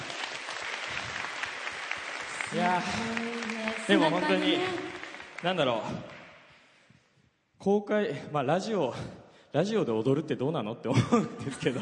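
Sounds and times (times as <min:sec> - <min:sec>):
audience applause: 0:00.0 - 0:06.4
speech: 0:02.5 - 0:06.2, 0:07.6 - 0:11.8
laughter: 0:02.6 - 0:05.1, 0:10.9 - 0:11.8.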